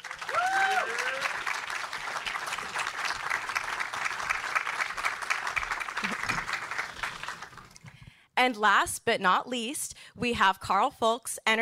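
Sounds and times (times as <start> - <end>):
applause from a sizable audience: 0.0 - 7.9
speech: 8.4 - 11.6.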